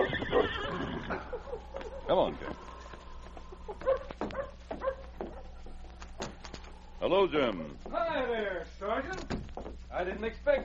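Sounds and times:
faint steady hum: 0.0s - 10.6s
dog barking in yappy bursts: 1.1s - 2.3s, 3.7s - 5.6s
speech: 2.1s - 2.7s, 7.0s - 10.6s.

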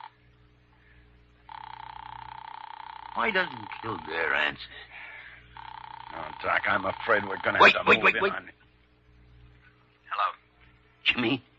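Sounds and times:
telephone ringing on a held line: 1.5s - 4.5s, 5.5s - 8.4s
speech: 3.2s - 5.1s, 6.1s - 8.6s, 11.2s - 11.5s.

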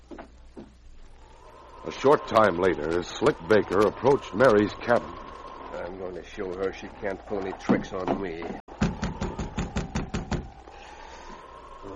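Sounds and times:
speech: 1.8s - 5.2s, 5.9s - 8.6s
firm knocks on a wooden cabin door: 8.8s - 10.5s.

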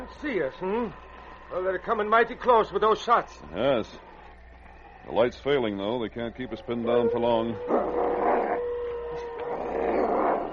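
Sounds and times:
speech: 0.1s - 4.1s, 5.0s - 8.2s
wolves growling: 6.6s - 10.5s.

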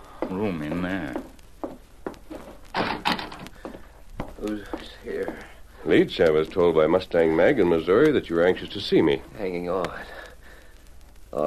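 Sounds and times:
speech: 0.3s - 1.3s, 4.4s - 10.2s
door scraping as it is pushed partly open: 2.3s - 3.5s.

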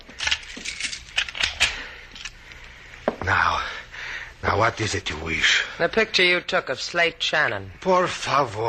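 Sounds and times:
metal keys jingling and clicking while locking a door: 0.1s - 2.4s
speech: 4.6s - 8.6s.

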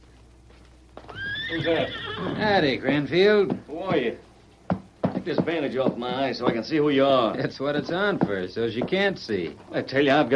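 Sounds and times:
horse hooves clip-clopping: 0.0s - 10.3s
horse neighing: 1.1s - 2.6s
speech: 1.5s - 4.3s, 5.2s - 10.3s.

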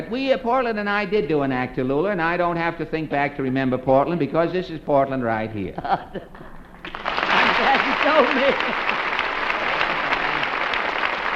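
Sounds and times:
speech: 0.0s - 6.5s, 7.6s - 9.0s
laughter: 5.7s - 6.6s, 7.2s - 10.7s
audience applause: 6.8s - 11.3s.

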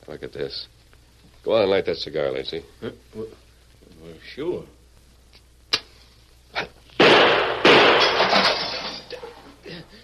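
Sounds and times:
speech: 0.1s - 0.8s, 1.4s - 3.4s, 4.0s - 4.8s
gunshots shooting a cigar and a match out of a hand: 7.0s - 8.5s
mirror breaking: 7.0s - 9.1s.

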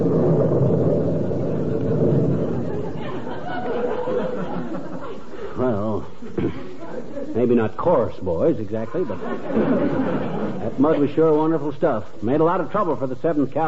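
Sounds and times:
deep loud rumble of thunder: 0.0s - 5.1s
scattered chuckles: 1.7s - 7.5s, 8.9s - 11.0s
speech: 7.5s - 13.6s.

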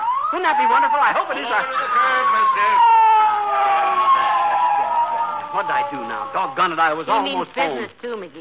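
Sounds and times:
police motorcycle siren: 0.0s - 7.2s
speech: 0.3s - 3.8s, 5.5s - 8.3s.

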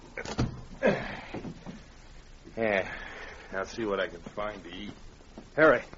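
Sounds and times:
cabin door closed from inside with a solid thud: 0.2s - 0.7s
speech: 3.7s - 5.9s.

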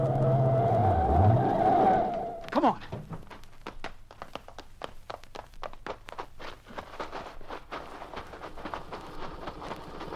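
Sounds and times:
car tires squealing while skidding to a halt on a road up into the Sierras: 0.0s - 2.5s.

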